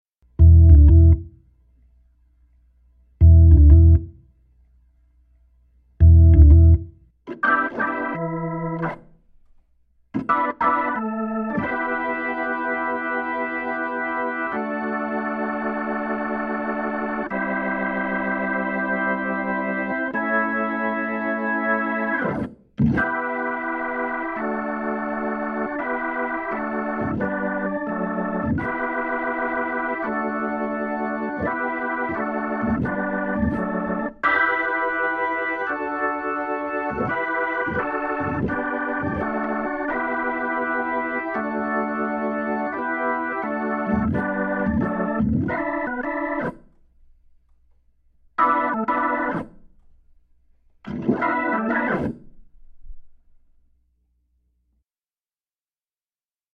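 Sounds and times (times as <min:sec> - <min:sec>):
Hammond B3 organ: 0:00.3 - 0:01.4, 0:03.2 - 0:04.2, 0:06.0 - 0:09.2, 0:10.1 - 0:46.8, 0:48.4 - 0:49.9, 0:50.8 - 0:52.4.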